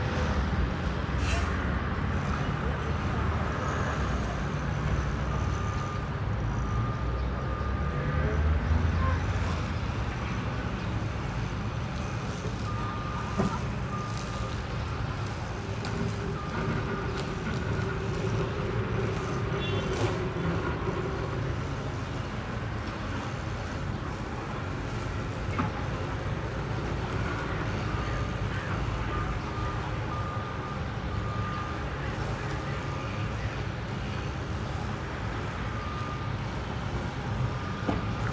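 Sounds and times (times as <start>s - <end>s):
dense rumble of city morning traffic with vehicles idling and passing: 0.0s - 38.3s
faint voices of city crowds: 1.0s - 38.3s
thin steady beeps: 9.0s - 23.8s, 26.7s - 38.3s.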